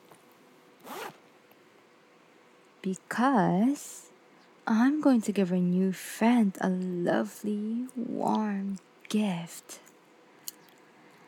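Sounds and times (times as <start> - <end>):
small pencil case zipper being pulled open: 0.8 - 1.2
speech: 2.8 - 4.1, 4.7 - 9.8.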